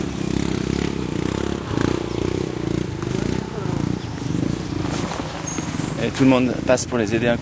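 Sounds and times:
motorcycle engine loaded with rice sacks straining at a small bridge: 0.0 - 7.3
indistinct voices: 1.6 - 7.0
speech: 6.0 - 7.3.

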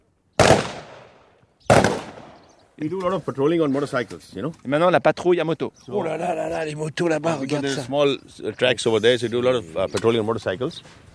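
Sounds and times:
gunshots fired at a target about three feet away during training: 0.4 - 2.5
speech: 2.8 - 11.1.

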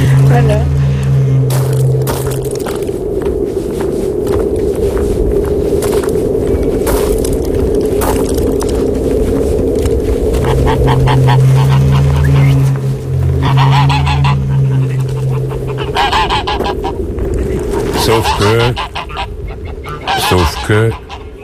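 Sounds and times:
low steady rumble: 0.0 - 21.4
speech: 0.4 - 0.8, 20.7 - 21.0
geese honking: 10.3 - 21.4.

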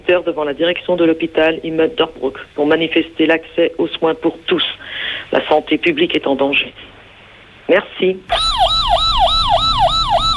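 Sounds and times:
speech: 0.1 - 7.0, 7.7 - 8.5
police car siren wailing: 8.3 - 10.3.

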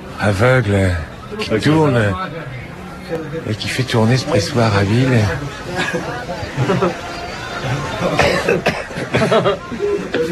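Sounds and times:
chatter in a crowded room: 0.0 - 10.2
speech: 0.2 - 10.2
laughter: 5.7 - 10.2
people coughing in a crowded room: 5.7 - 10.2.

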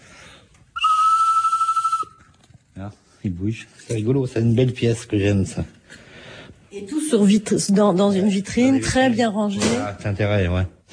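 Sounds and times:
collectible bird whistle blown: 0.8 - 2.2
speech: 2.8 - 6.0, 6.7 - 10.9.

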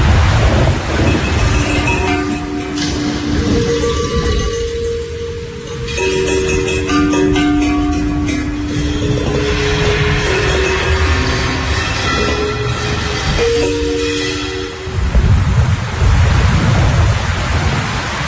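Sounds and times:
heavy rain pouring during a thunderstorm at night: 0.0 - 18.2
thunder rumbling during a thunderstorm at night: 0.0 - 18.2.

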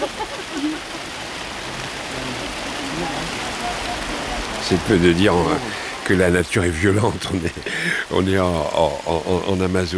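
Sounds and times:
laughter: 0.0 - 1.3, 7.3 - 8.2
steady rain pattering on surfaces: 0.0 - 9.9
faint indistinct voices: 1.8 - 6.5
speech: 4.7 - 9.9.

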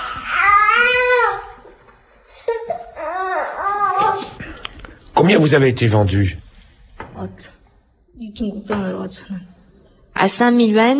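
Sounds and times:
baby crying: 0.0 - 1.6, 2.5 - 4.4
speech: 5.2 - 6.4, 7.2 - 7.6, 8.2 - 9.6, 10.2 - 10.9.

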